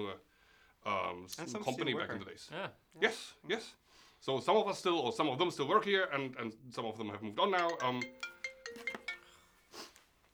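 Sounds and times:
speech: 0.0s - 8.9s
short electronic phone ringtone: 7.6s - 9.9s.

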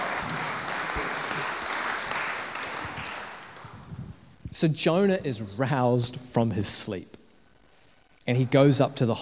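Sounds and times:
crowd applauding: 0.0s - 4.0s
speech: 4.6s - 7.2s, 8.3s - 9.2s.

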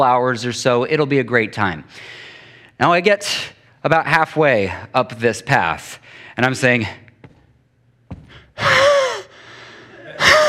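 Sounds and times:
speech: 0.0s - 2.2s, 2.8s - 7.0s
person imitating heavy panting of hiking uphill: 8.2s - 10.4s.

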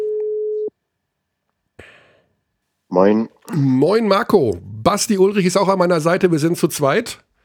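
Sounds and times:
telephone ringing tone while calling: 0.0s - 0.7s
speech: 2.9s - 7.3s.

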